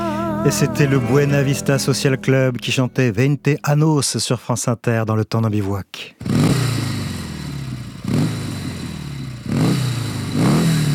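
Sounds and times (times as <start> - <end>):
speech: 0.4 - 6.6
motorcycle engine idling and revving: 6.2 - 10.9.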